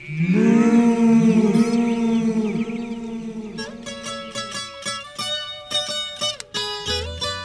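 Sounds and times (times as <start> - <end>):
cow mooing echoing across a valley: 0.0 - 4.4.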